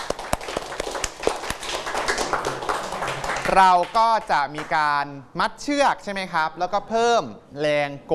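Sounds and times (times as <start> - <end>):
small group of students applauding in a classroom: 0.0 - 4.8
speech: 3.5 - 8.1.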